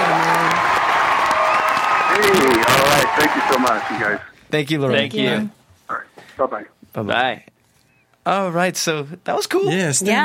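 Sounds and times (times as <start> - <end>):
crowd applause: 0.0 - 4.3
people cheering: 0.0 - 4.3
speech: 3.2 - 7.5, 8.2 - 10.2.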